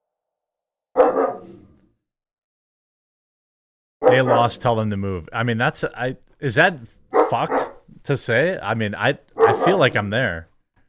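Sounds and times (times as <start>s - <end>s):
puppy barking: 1.0s - 1.6s, 4.0s - 4.6s, 7.1s - 7.9s, 9.4s - 9.8s
speech: 4.1s - 10.5s.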